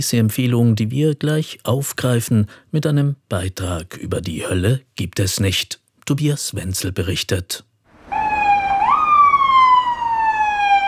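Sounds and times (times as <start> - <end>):
speech: 0.0 - 8.2
ambulance siren passing through a city square: 7.9 - 10.8.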